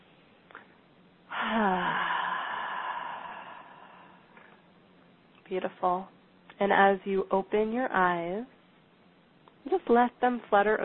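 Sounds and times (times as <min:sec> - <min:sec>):
deep breath released in a long breathy exhale with a voiced sigh: 0:01.3 - 0:04.6
speech: 0:05.5 - 0:08.6, 0:09.9 - 0:10.8.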